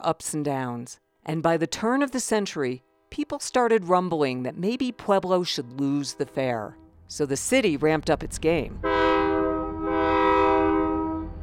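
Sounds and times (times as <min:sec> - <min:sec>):
speech: 0:00.0 - 0:09.0
contemporary freight train horn blaring: 0:02.8 - 0:07.0, 0:08.8 - 0:11.4
freight train rolling through Pueblo with low rumble: 0:05.8 - 0:11.4.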